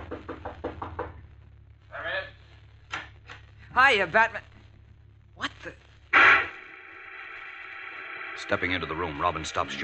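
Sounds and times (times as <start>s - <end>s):
knocking on a door: 0.0s - 1.2s
speech: 3.8s - 4.5s, 5.4s - 5.8s, 8.4s - 9.8s.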